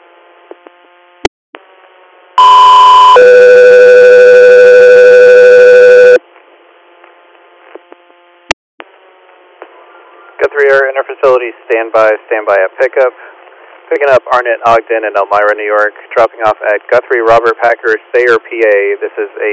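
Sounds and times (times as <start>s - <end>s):
dispatch alert tones on an emergency medical radio channel: 2.4s - 6.2s
radio hiss: 9.6s - 19.5s
speech: 11.2s - 13.3s, 13.9s - 19.5s.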